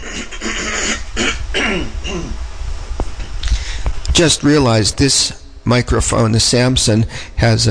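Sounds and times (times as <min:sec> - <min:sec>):
brief cough-like catch: 0:00.0 - 0:02.4
man clearing his throat: 0:00.0 - 0:02.4
speech: 0:04.2 - 0:07.6.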